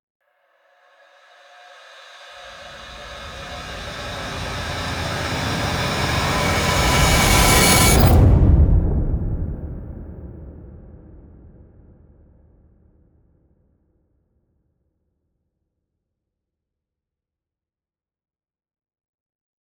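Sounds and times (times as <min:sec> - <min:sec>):
analog suspended long bright synth rise: 0:02.1 - 0:08.7.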